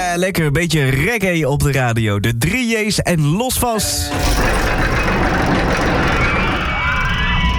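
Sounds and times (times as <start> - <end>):
speech: 0.2 - 5.4
roller coaster ride at an amusement park: 4.1 - 7.5.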